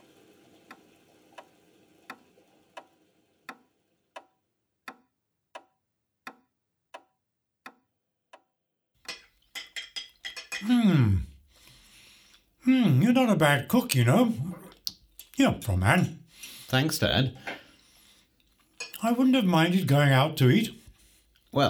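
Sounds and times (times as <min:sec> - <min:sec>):
clock ticking: 0:00.0 - 0:08.4, 0:09.1 - 0:21.6
cutlery and plates clinking while setting a table: 0:09.1 - 0:10.8, 0:18.8 - 0:19.0
speech: 0:13.1 - 0:14.5, 0:15.4 - 0:17.6, 0:19.0 - 0:20.8.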